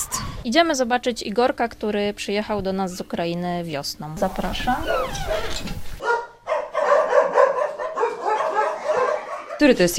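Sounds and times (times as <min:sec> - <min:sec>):
speech: 0:00.4 - 0:05.9, 0:09.6 - 0:09.9
dog barking: 0:06.0 - 0:09.8.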